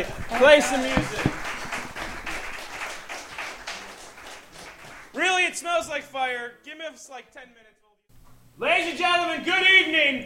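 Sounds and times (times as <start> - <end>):
speech: 0.0 - 1.3, 5.6 - 7.8, 8.6 - 10.2
audience clapping: 0.0 - 5.6.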